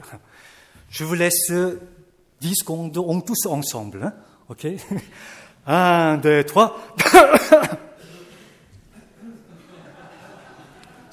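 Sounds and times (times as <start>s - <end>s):
speech: 0.0s - 7.9s
person with a weeks-long cough coughing harshly: 7.0s - 8.0s
laughter: 7.0s - 11.1s.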